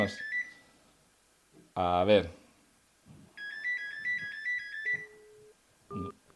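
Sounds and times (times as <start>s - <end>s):
speech: 0.0s - 0.3s, 1.8s - 2.4s, 5.9s - 6.2s
electronic telephone ring tone warbling on an outgoing call: 3.4s - 6.2s.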